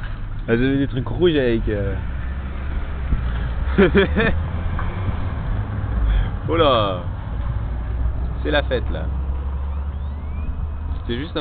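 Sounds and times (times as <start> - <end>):
passing car with steady low engine drone: 0.0 - 11.3
speech: 0.5 - 2.1, 3.8 - 4.5, 6.5 - 7.1, 8.4 - 9.2, 11.1 - 11.3
laughter: 3.7 - 4.4.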